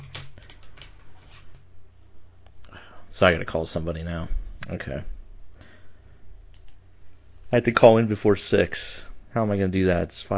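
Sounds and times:
person typing on keys: 0.0 - 1.0
steady low hum: 0.0 - 10.3
speech: 3.1 - 5.2, 7.5 - 10.3.

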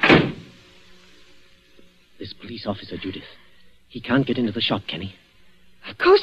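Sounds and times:
door shut quickly with a firm thud: 0.0 - 0.6
speech: 2.2 - 5.2, 5.8 - 6.2.

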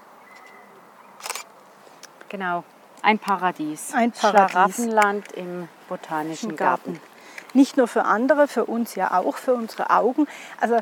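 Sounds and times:
camera shutter clicking while taking a photo in a botanical garden: 1.2 - 1.5
speech: 2.3 - 10.8.

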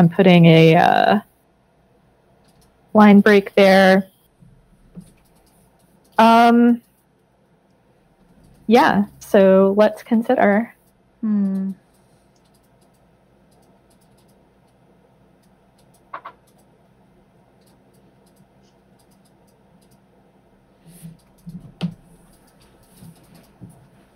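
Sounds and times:
speech: 0.0 - 1.3, 2.9 - 4.1, 6.2 - 6.9, 8.7 - 11.8
several people typing on keyboards: 2.4 - 2.8, 5.0 - 7.0, 8.2 - 8.7, 11.3 - 14.8, 15.4 - 16.7, 17.6 - 20.0, 21.0 - 23.8.

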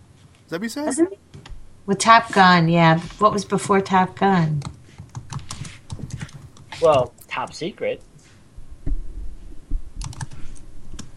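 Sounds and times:
speech: 0.5 - 1.3, 1.9 - 4.7, 6.8 - 8.1
typing on a computer keyboard: 4.6 - 6.7, 10.0 - 11.1.

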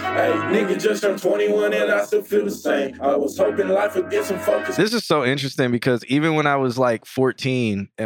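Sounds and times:
half-sung half-rapped vocal over sparse backing in rough song mix: 0.0 - 5.0
speech: 0.2 - 8.0.

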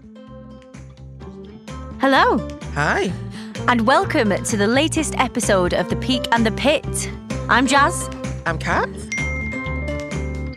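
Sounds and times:
speech: 2.0 - 9.1
phone notification chime: 9.1 - 9.9.

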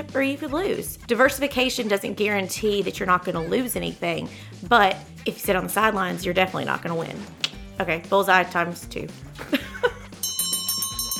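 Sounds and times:
speech: 0.0 - 9.6
person chuckling: 9.4 - 10.2
closing bell ringing: 10.2 - 11.1.

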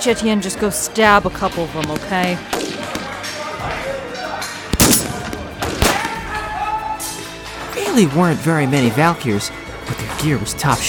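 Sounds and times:
speech: 0.0 - 2.6, 8.0 - 9.6, 10.2 - 10.8
gunshots in a shootout: 1.8 - 3.3, 4.7 - 6.5
dense noisy battle sound in a shootout: 4.8 - 7.2.

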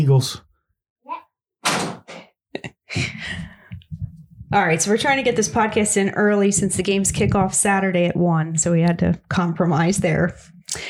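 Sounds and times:
speech: 0.0 - 0.5, 4.5 - 10.8
door thudding as it latches: 1.6 - 2.0
door squeaking: 1.6 - 2.1.

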